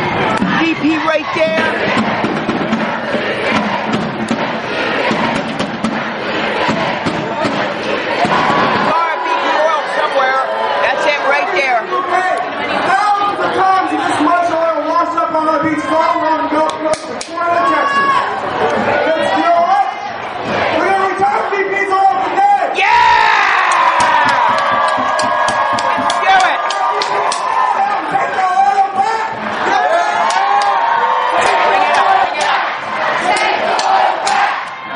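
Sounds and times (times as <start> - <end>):
large crowd of protest marchers shouting and chanting: 0.0 - 34.9
speech: 0.8 - 2.0
scattered thumps and bangs: 1.4 - 8.8.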